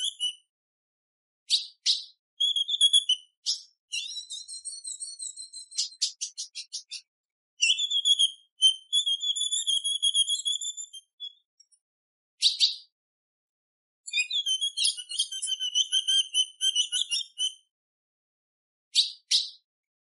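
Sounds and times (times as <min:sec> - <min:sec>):
female ultramarine grosbeak calling with whistled trills: 0:00.0 - 0:00.5, 0:01.5 - 0:11.8, 0:12.4 - 0:12.9, 0:14.1 - 0:17.7, 0:19.0 - 0:19.6.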